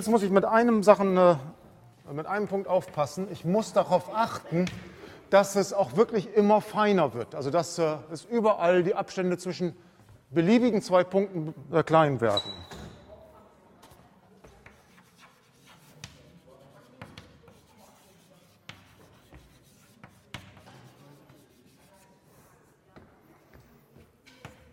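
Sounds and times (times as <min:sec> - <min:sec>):
speech: 0:00.0 - 0:12.8
mathematical formula written by hand with scratchy strokes: 0:14.6 - 0:22.5.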